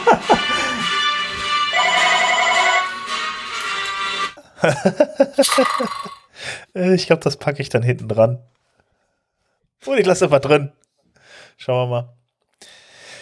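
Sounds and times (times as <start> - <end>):
laughter: 0.0 - 1.2, 4.4 - 6.1
telephone ringtone of an incoming call: 1.7 - 3.4, 5.4 - 6.2
speech: 4.7 - 8.5, 9.8 - 10.8, 11.6 - 12.8
choppy broken sounds: 5.4 - 6.2.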